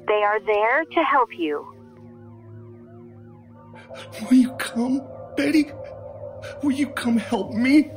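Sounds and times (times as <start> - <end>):
steady low drone: 0.0 - 7.9
speech: 0.1 - 1.8, 3.9 - 7.9
emergency vehicle sirens wailing: 3.7 - 7.9.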